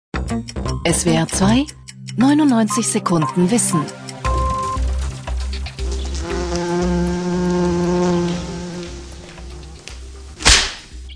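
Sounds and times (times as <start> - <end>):
speech: 0.3 - 4.1
wasp buzzing: 4.5 - 10.8
sharp snap: 8.3 - 11.0.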